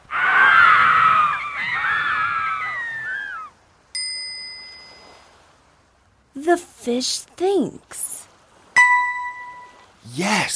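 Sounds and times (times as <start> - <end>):
dolphins and whales squealing calls: 0.0 - 3.6
single bright bell-like ding: 4.0 - 5.0, 8.8 - 9.9
speech: 6.5 - 8.1, 10.1 - 10.5.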